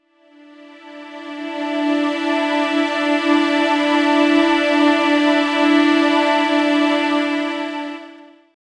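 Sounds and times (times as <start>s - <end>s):
strings layer: 0.1s - 8.5s.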